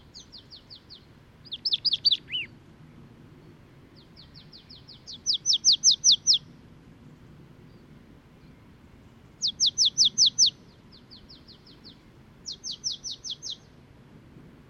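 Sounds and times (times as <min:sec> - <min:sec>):
Marsh tit Poecile palustris calling in rapid runs of clipped notes: 0:00.0 - 0:02.5, 0:04.0 - 0:06.5, 0:09.4 - 0:13.8
steady low background rumble: 0:00.0 - 0:14.6.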